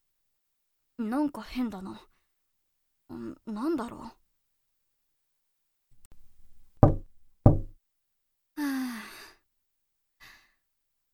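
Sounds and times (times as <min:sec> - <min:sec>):
speech: 0:01.0 - 0:02.1, 0:03.1 - 0:04.2
knocking on a door: 0:06.5 - 0:07.8
person sighing: 0:08.6 - 0:09.4
faint breath: 0:10.2 - 0:10.6.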